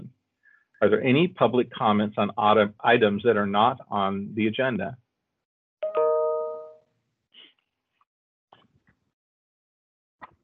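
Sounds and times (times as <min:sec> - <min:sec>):
speech: 0:00.8 - 0:05.0
doorbell chime during a board meeting: 0:05.8 - 0:06.8.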